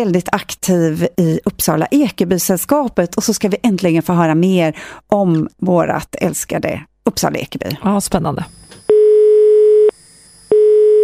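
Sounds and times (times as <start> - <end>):
speech: 0.0 - 8.8
electronic telephone ringing tone while placing a call: 8.8 - 11.0.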